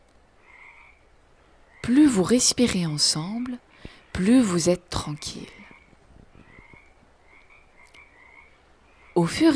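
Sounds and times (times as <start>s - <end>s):
faint steady hiss: 0.0s - 9.5s
frog croaking in soft buzzing raspy calls: 0.3s - 1.1s, 1.7s - 2.5s, 5.0s - 9.5s
speech: 1.9s - 5.6s, 9.2s - 9.5s.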